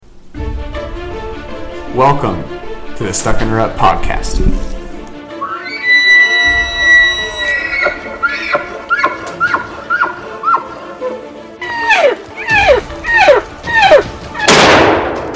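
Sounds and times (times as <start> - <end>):
speech: 2.0 - 4.7
high descending animal calls: 5.3 - 14.6
gunshot from a wolf hunt: 14.4 - 15.3.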